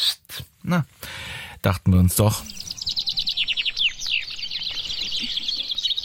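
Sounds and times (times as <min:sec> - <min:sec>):
speech: 0:00.7 - 0:01.0, 0:01.6 - 0:02.6
chaffinches singing at a finch singing contest in the Harz: 0:02.2 - 0:06.0.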